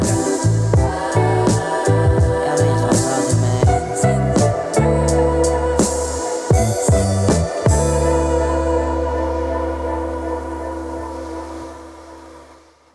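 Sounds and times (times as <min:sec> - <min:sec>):
steady drums: 0:00.0 - 0:09.5
bass: 0:00.0 - 0:12.9
sustained harmonic instruments: 0:00.0 - 0:12.9.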